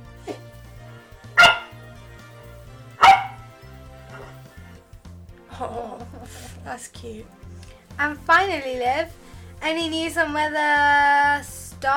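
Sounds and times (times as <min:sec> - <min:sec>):
puppy barking while pushing a pumpkin: 0:01.4 - 0:01.8, 0:03.0 - 0:03.5
laughter: 0:05.5 - 0:06.6
speech: 0:05.6 - 0:07.4, 0:08.0 - 0:11.9.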